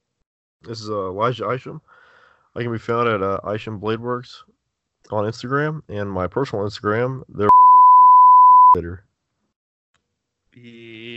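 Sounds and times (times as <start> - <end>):
speech: 0.6 - 2.0, 2.6 - 7.5, 8.7 - 9.1, 10.6 - 11.1
steady high electronic beep: 7.5 - 8.8.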